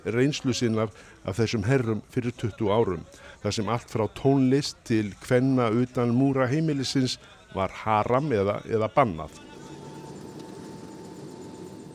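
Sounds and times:
speech: 0.0 - 9.4
airplane engines roaring heard from inside the cabin during flight: 9.5 - 11.9.

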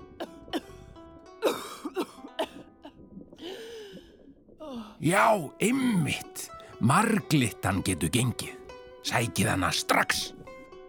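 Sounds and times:
hoarse-voiced queen coughing and clearing her throat: 1.4 - 2.6
speech: 4.7 - 10.4.

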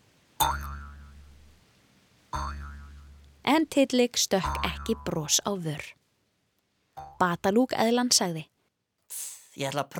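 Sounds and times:
cartoon boing sound effect of a kangaroo hopping: 0.4 - 1.5, 2.4 - 3.4, 4.4 - 5.4, 7.0 - 7.3
speech: 3.5 - 6.0, 7.2 - 8.5, 9.1 - 9.9.

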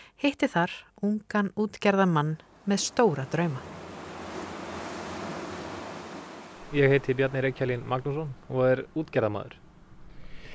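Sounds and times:
speech: 0.2 - 3.8, 6.7 - 9.6
faint breath of wind: 1.8 - 10.5
calm sea water lapping near a boat by Grímsey island: 2.4 - 8.7.

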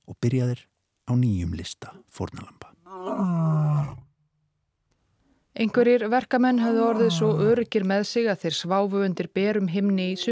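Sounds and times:
speech: 0.2 - 3.6, 5.6 - 10.2
lion roaring: 2.8 - 4.1, 6.6 - 7.6.

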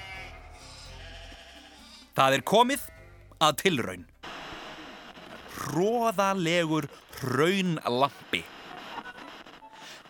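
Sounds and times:
sheep bleating: 0.0 - 2.2
speech: 2.2 - 4.1, 5.7 - 8.6.

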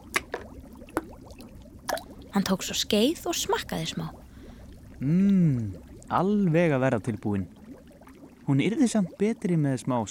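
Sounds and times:
nails dropped into a pot of water: 0.0 - 2.2
bubbling gurgling water: 0.0 - 10.0
speech: 2.4 - 4.2, 5.0 - 7.6, 8.5 - 10.0.

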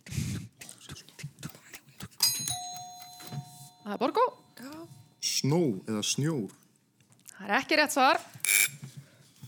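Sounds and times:
quiz bell ringing: 2.2 - 5.4
speech: 3.9 - 6.6, 7.5 - 8.3.

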